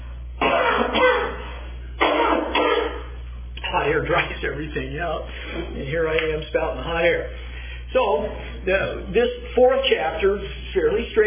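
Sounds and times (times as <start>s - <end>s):
low steady hum: 0.0s - 11.2s
harsh coughs in quick double bursts: 0.4s - 3.2s
speech: 4.0s - 11.2s.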